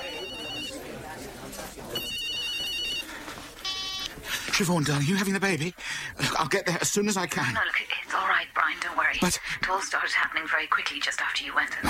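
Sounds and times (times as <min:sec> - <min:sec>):
mobile phone ringtone trilling in bright electronic bursts: 0:00.0 - 0:00.9, 0:02.0 - 0:04.1
murmur of voices: 0:00.0 - 0:11.8
speech: 0:04.6 - 0:11.8.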